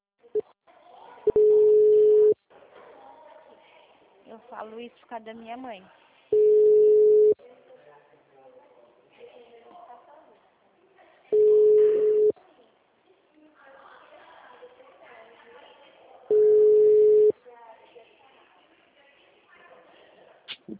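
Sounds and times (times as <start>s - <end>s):
telephone busy tone after a dropped call: 1.3s - 2.4s, 6.3s - 7.4s, 11.3s - 12.3s, 16.3s - 17.3s
speech: 4.6s - 6.0s
person talking quietly: 20.5s - 20.7s.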